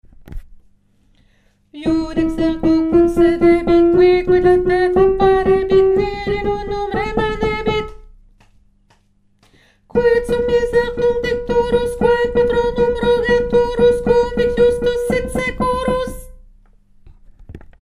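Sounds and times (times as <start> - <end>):
tenor singing: 1.8 - 8.0, 9.9 - 16.4.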